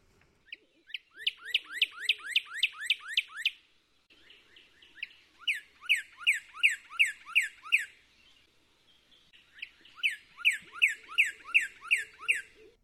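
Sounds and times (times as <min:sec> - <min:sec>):
several cardinals calling back and forth: 0:00.0 - 0:12.8
Northern Cardinal song: 0:00.5 - 0:03.6, 0:05.0 - 0:07.9, 0:09.5 - 0:12.6.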